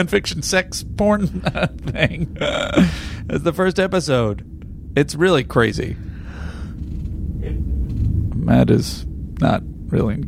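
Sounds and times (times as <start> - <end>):
speech: 0.0 - 6.1, 7.4 - 7.7, 8.5 - 10.2
low rumble: 0.0 - 10.2
person yawning: 2.4 - 3.1.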